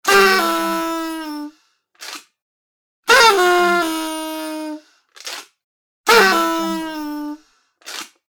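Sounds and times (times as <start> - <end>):
long party horn: 0.0 - 1.6, 3.1 - 4.9, 6.1 - 7.5.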